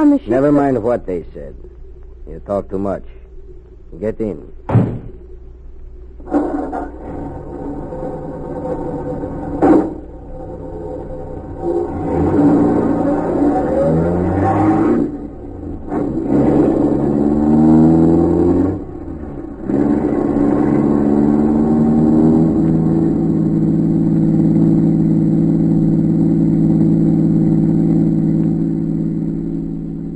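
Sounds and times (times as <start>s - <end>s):
speech: 0.0s - 3.2s, 3.9s - 4.9s
car engine revving and pulling away: 6.2s - 30.1s.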